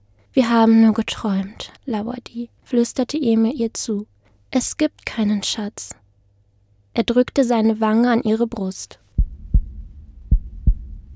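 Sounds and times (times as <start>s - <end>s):
speech: 0.4s - 6.0s, 7.0s - 9.0s
faint low rumble: 9.0s - 11.1s
low dull heartbeat thumps: 9.2s - 11.1s.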